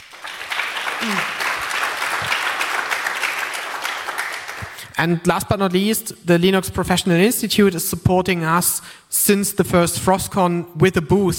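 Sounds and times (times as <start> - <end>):
audience applause: 0.0 - 4.8
speech: 1.0 - 1.4, 5.0 - 11.3.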